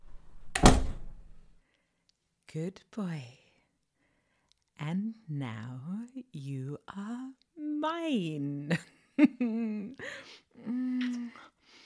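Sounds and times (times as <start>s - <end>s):
single door shutting with a firm thud: 0.1s - 1.4s
speech: 2.5s - 3.4s, 4.8s - 11.5s.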